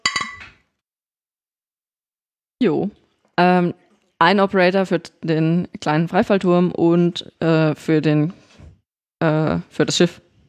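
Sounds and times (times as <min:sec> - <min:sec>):
glasses clinking in a toast: 0:00.0 - 0:00.6
speech: 0:02.6 - 0:08.4, 0:09.2 - 0:10.2.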